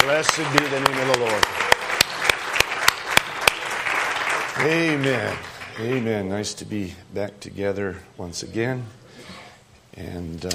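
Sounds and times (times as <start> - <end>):
scattered applause: 0.0 - 6.1
crowd clapping together in a steady quick rhythm: 0.0 - 6.2
speech: 0.1 - 1.7, 4.6 - 9.4, 10.0 - 10.5.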